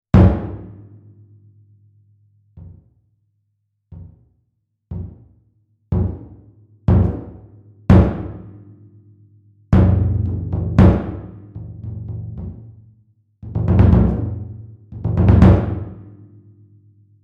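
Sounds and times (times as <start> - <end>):
odaiko taiko drum hit: 0.2 - 0.8, 4.9 - 5.3, 5.9 - 8.6, 9.8 - 12.8, 13.4 - 16.2.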